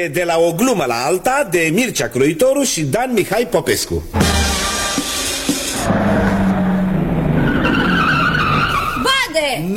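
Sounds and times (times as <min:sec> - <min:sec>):
speech: 0:00.0 - 0:04.5, 0:09.4 - 0:09.7
car engine rumbling: 0:04.2 - 0:09.2
car tires squealing and skidding under hard braking: 0:04.6 - 0:09.4.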